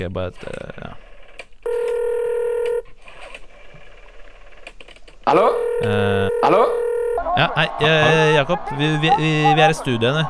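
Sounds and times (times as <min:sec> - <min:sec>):
speech: 0:00.0 - 0:00.8, 0:05.3 - 0:06.8, 0:07.4 - 0:10.2
faint clatter: 0:00.0 - 0:07.2
telephone dialing tone: 0:01.7 - 0:03.0, 0:05.3 - 0:07.3
laughter: 0:05.3 - 0:10.2.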